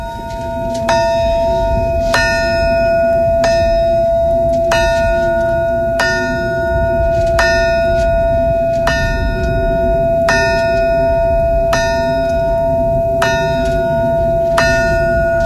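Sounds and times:
low rumble of wind or outdoor noise: 0.0 - 15.4
memorial alarm bell struck at a monument: 0.0 - 15.4.

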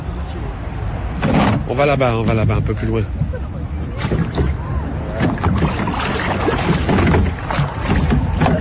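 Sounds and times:
low rumble of wind: 0.0 - 8.6
speech: 1.7 - 3.3
oars of a small rowboat dipping in water: 3.8 - 8.6.

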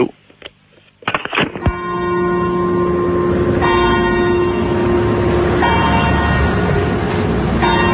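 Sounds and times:
church bells pealing: 1.6 - 7.9.

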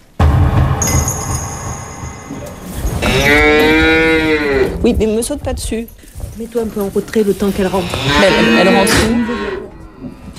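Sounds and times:
high whine: 0.1 - 3.4
low rumbling barn noise: 2.6 - 10.3
cow mooing: 3.0 - 4.8, 7.7 - 10.3
speech: 4.8 - 9.4.

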